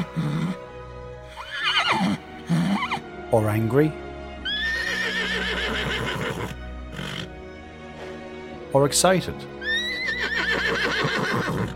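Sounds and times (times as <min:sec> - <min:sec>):
horse at a stable whinnying: 0:00.0 - 0:00.6, 0:01.3 - 0:03.1, 0:04.4 - 0:07.4, 0:09.6 - 0:11.7
speech: 0:03.3 - 0:04.0, 0:08.7 - 0:09.5.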